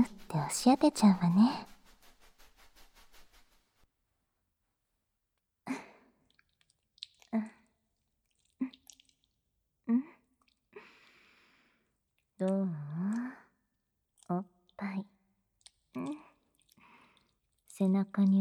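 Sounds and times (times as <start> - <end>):
soap being worked into a lather: 0.0 - 3.8, 6.2 - 9.5, 15.5 - 18.3
speech: 0.4 - 1.7, 12.4 - 13.0, 17.8 - 18.3.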